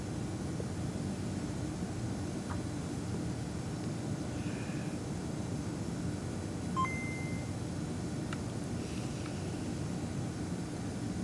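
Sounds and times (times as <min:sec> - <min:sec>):
low rumbling noise: 0:00.0 - 0:11.2
short thin electronic beeps from a Game Boy cartridge: 0:06.8 - 0:07.5.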